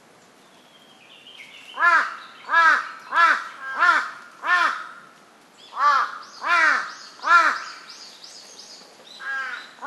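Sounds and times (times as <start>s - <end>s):
large-billed crow giving throaty caws: 1.8s - 5.0s, 5.8s - 7.7s, 9.2s - 9.8s.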